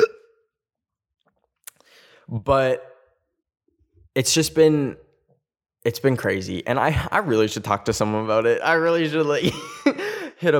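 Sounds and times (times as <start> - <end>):
sharp hiccup with a brief voiced squeak: 0.0 - 0.4
speech: 2.3 - 2.9, 4.2 - 5.1, 5.8 - 10.5.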